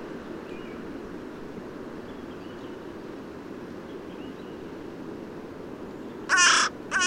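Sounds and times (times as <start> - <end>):
Carrion crow Corvus corone giving a loud raspy caw: 6.3 - 7.0.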